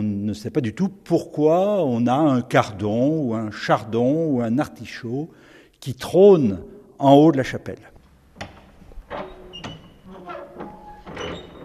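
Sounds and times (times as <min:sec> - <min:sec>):
speech: 0:00.3 - 0:07.9
heavy wooden chapel door creaking open on squealing hinges: 0:08.1 - 0:11.6.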